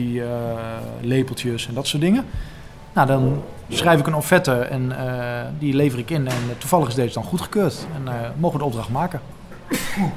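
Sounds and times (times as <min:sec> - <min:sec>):
speech: 0:00.0 - 0:10.1
person sneezing: 0:09.7 - 0:10.1.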